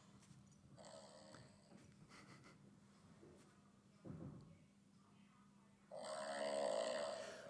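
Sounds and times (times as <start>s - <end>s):
small Shih Tzu dog snoring: 0.8s - 1.7s, 5.9s - 7.4s.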